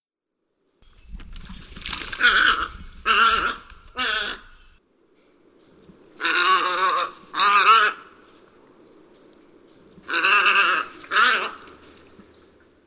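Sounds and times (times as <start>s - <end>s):
Tricolored heron rough buzzy croaks: 2.2s - 4.7s, 6.2s - 8.2s, 10.0s - 11.8s.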